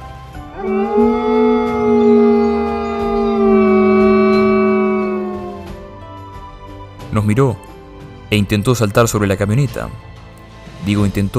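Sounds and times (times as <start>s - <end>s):
long howl of a hairless animal standing on its hind legs: 0.5s - 5.9s
speech: 7.2s - 7.7s, 8.3s - 10.1s, 10.8s - 11.3s.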